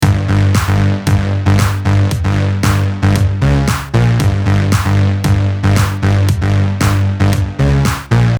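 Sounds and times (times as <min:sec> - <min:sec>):
kick drum: 0:00.0 - 0:08.1
viol bassline: 0:00.0 - 0:08.3
snare drum: 0:01.6 - 0:01.8, 0:02.6 - 0:03.0, 0:03.7 - 0:04.0, 0:05.8 - 0:06.0, 0:07.9 - 0:08.1.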